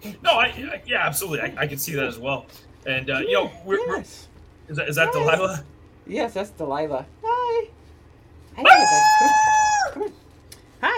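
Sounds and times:
speech: 0:00.0 - 0:07.2, 0:08.6 - 0:10.1
female dog barking and whining: 0:08.6 - 0:10.0.

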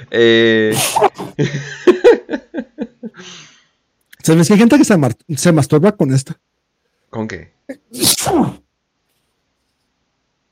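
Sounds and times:
speech: 0:00.0 - 0:02.2, 0:04.2 - 0:06.5, 0:07.1 - 0:08.6
sneeze: 0:00.7 - 0:01.4, 0:07.7 - 0:08.6
laughter: 0:01.2 - 0:03.2.

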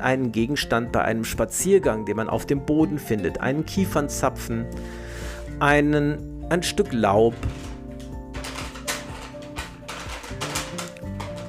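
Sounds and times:
speech: 0:00.0 - 0:07.6
cat pawing and batting at a rustling plastic bag: 0:07.2 - 0:11.4.

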